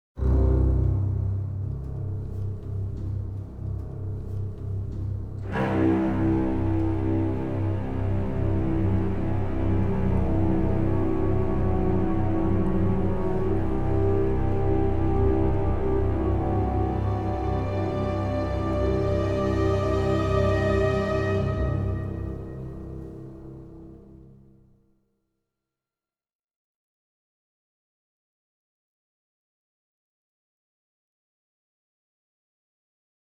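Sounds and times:
orchestral drone: 0.2 - 24.3.

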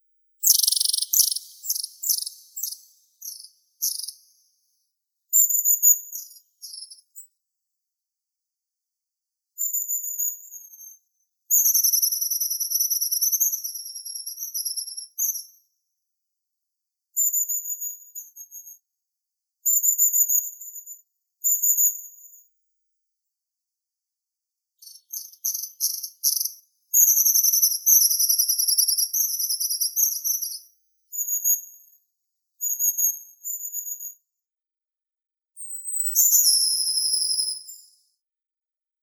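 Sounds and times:
long-tailed tit Aegithalos caudatus: 0.4 - 4.7, 5.4 - 7.2, 11.6 - 15.5, 24.8 - 31.4, 35.6 - 38.0.

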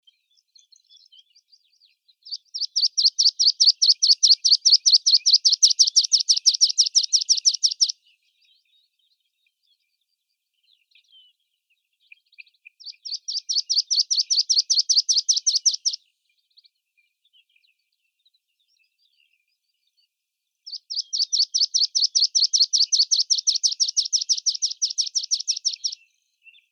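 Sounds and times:
meadow pipit Anthus pratensis: 2.4 - 8.0, 12.8 - 16.0, 20.7 - 26.2.

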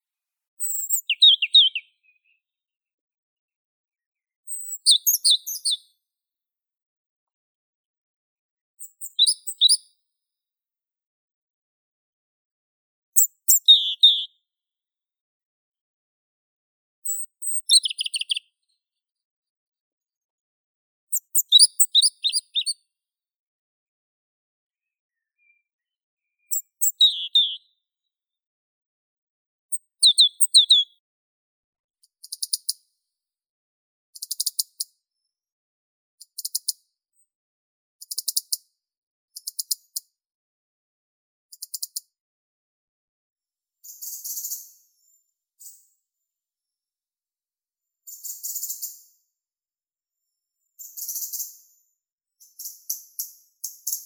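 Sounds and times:
robin Erithacus rubecula singing: 0.6 - 2.4, 4.5 - 5.8, 9.0 - 9.8, 13.2 - 14.4, 17.1 - 18.5, 21.2 - 22.8, 26.4 - 27.7, 29.8 - 31.0.

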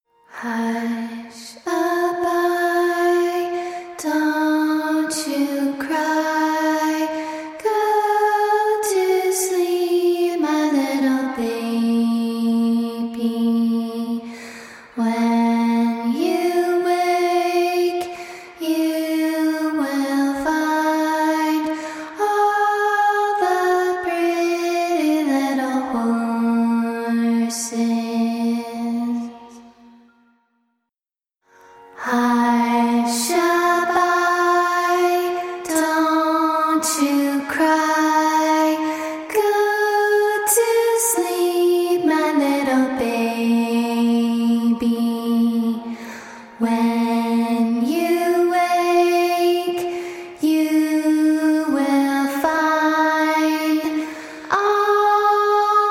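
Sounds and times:
lead vocals: 0.1 - 30.3, 31.5 - 55.8.

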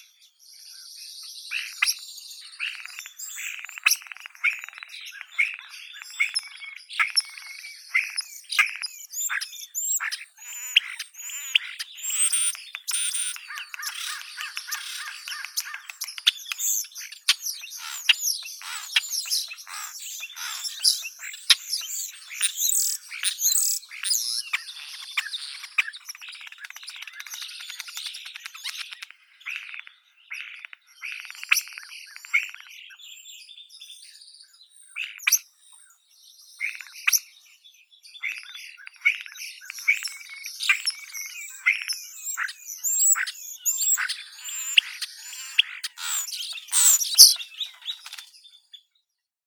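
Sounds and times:
common starling Sturnus vulgaris calling: 1.5 - 33.0, 38.2 - 48.4.

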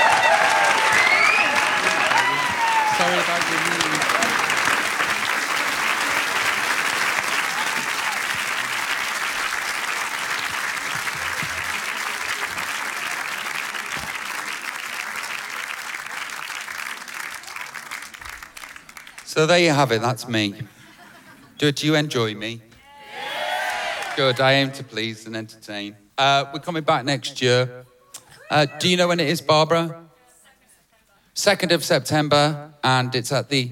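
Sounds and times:
large audience applauding a performer after a song: 0.0 - 19.3
audience whistles: 0.9 - 1.8
speech: 19.4 - 20.8, 21.6 - 22.7, 24.2 - 27.9, 28.5 - 30.0, 31.4 - 33.6.

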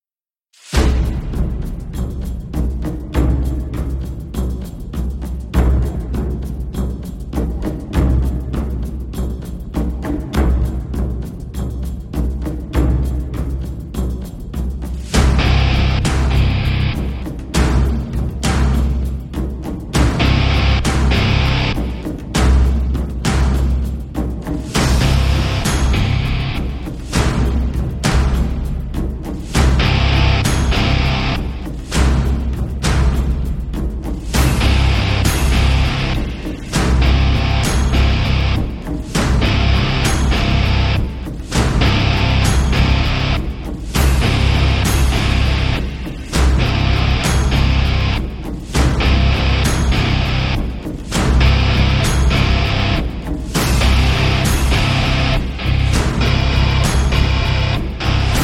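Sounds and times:
drums: 0.5 - 58.4
guitar: 15.2 - 17.2, 20.0 - 22.0, 24.8 - 26.9, 29.6 - 31.7, 34.4 - 58.4.

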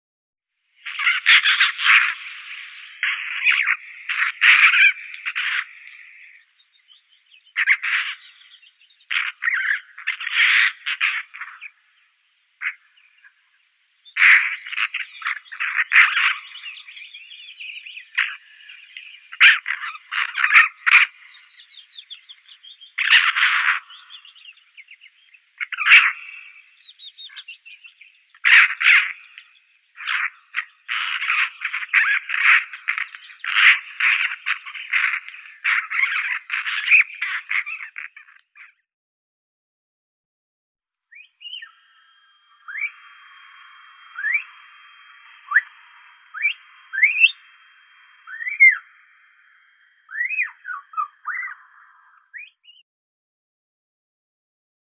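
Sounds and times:
Eurasian magpie Pica pica calling: 0.8 - 38.4, 41.1 - 52.8.

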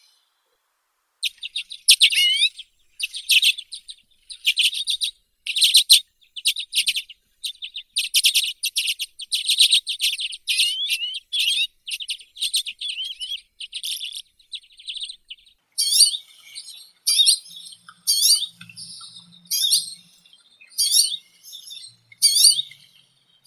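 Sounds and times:
common redpoll Acanthis flammea: 1.2 - 23.4.

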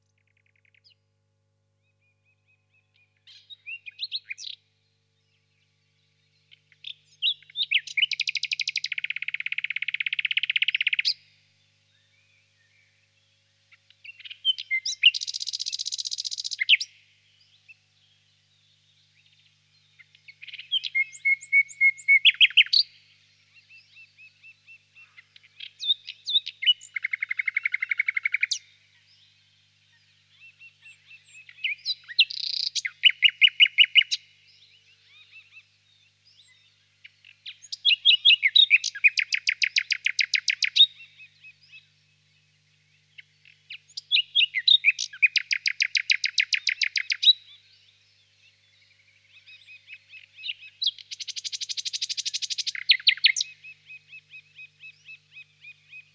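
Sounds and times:
nightingale singing in a swamp: 2.0 - 56.1.

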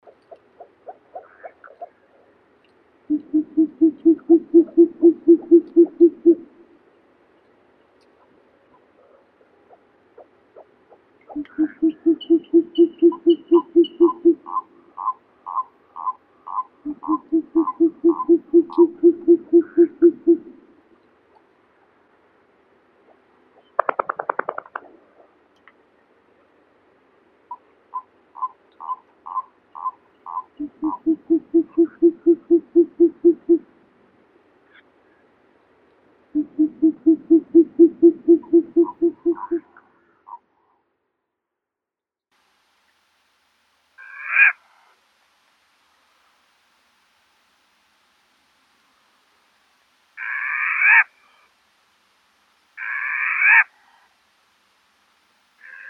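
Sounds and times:
short-eared owl Asio flammeus calling: 0.0 - 2.4, 3.1 - 6.8, 8.0 - 20.7, 27.5 - 33.7, 36.3 - 40.5, 44.0 - 44.6, 50.2 - 51.4, 52.8 - 53.7, 55.6 - 55.8.

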